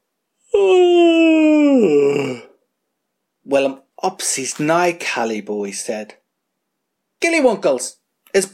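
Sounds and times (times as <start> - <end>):
voice imitating a long yawn like a lion's: 0.4 - 2.6
speech: 0.5 - 0.8, 3.6 - 6.2, 7.2 - 8.5.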